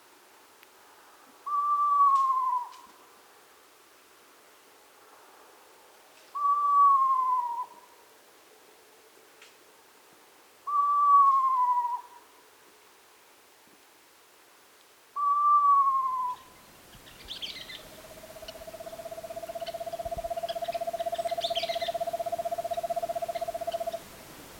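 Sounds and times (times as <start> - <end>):
Eastern Screech-Owl calling: 1.5 - 2.9, 6.4 - 7.9, 10.7 - 12.2, 15.2 - 24.1.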